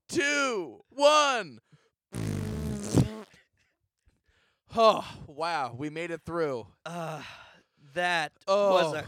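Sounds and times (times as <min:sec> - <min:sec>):
speech: 0:00.1 - 0:02.2, 0:04.7 - 0:09.0
two people farting at the same time: 0:02.1 - 0:03.4.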